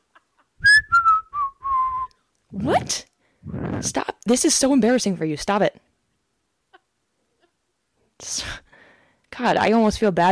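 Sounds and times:
person whistling: 0:00.6 - 0:02.1
speech: 0:02.5 - 0:05.8, 0:09.4 - 0:10.2.

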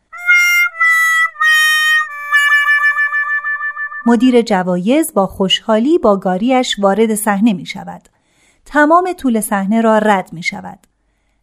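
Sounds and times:
harmonica playing: 0:00.0 - 0:04.4
speech: 0:04.0 - 0:10.9.

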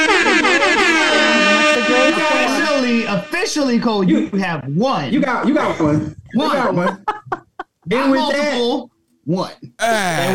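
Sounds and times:
air horn sound effect blaring: 0:00.0 - 0:03.8
speech: 0:03.4 - 0:07.0, 0:07.9 - 0:10.3
laughter: 0:05.3 - 0:07.9.

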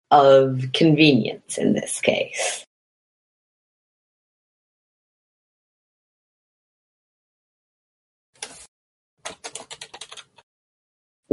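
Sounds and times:
speech: 0:00.1 - 0:02.7
keyboard typing: 0:08.4 - 0:10.4.

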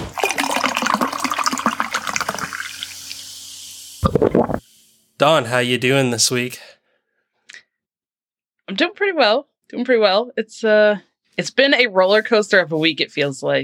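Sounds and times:
clinking: 0:00.1 - 0:02.9
liquid pouring into a glass: 0:00.1 - 0:03.3, 0:04.1 - 0:04.6
light fizzing: 0:00.1 - 0:03.4
speech: 0:05.2 - 0:06.7, 0:08.8 - 0:13.6.

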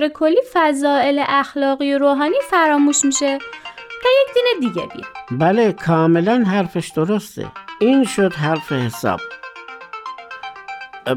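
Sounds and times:
speech: 0:00.0 - 0:09.4
phone ringtone of bright electronic tones: 0:02.4 - 0:11.1.

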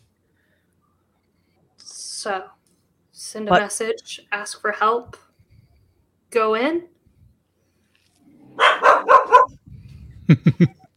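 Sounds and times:
speech: 0:02.2 - 0:02.6, 0:03.2 - 0:05.2, 0:06.3 - 0:06.9, 0:10.3 - 0:10.8
guard dogs barking: 0:08.5 - 0:09.6
laughter: 0:10.3 - 0:10.9.

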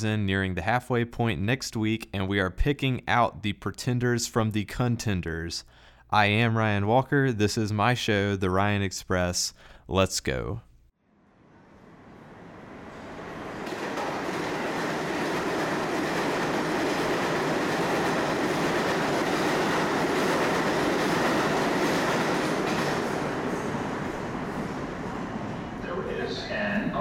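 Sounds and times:
speech: 0:00.0 - 0:10.7
subway train approaching the station: 0:11.2 - 0:26.9.

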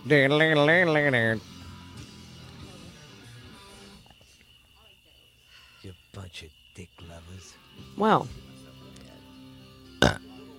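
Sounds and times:
speech: 0:00.0 - 0:01.6, 0:05.8 - 0:08.5
burp into a microphone: 0:10.0 - 0:10.3.

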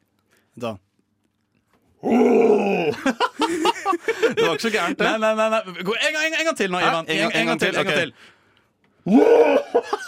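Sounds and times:
speech: 0:00.6 - 0:00.9, 0:02.0 - 0:08.4, 0:09.0 - 0:10.0
person imitating a tiger's roar: 0:02.0 - 0:03.1, 0:09.1 - 0:09.7
laughter: 0:02.9 - 0:05.3, 0:09.5 - 0:10.0.

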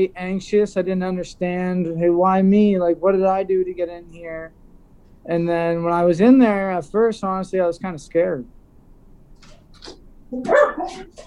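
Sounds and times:
speech: 0:00.0 - 0:04.6, 0:05.2 - 0:08.6, 0:09.8 - 0:11.2
female Newfoundland mix dog barking: 0:10.4 - 0:11.2
female Newfoundland mix dog yipping: 0:10.4 - 0:11.2.

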